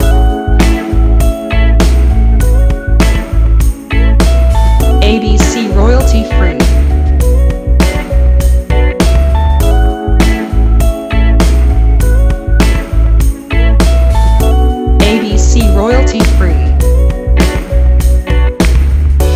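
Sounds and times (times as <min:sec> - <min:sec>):
smooth soul music: 0:00.0 - 0:19.3.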